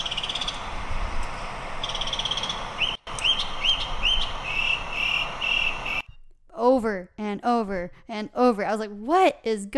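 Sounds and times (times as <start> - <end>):
bird calling outside a door on a sunny day: 0.0 - 0.7, 1.8 - 6.1
constant hiss of noise: 0.0 - 6.0
speech: 7.6 - 9.7.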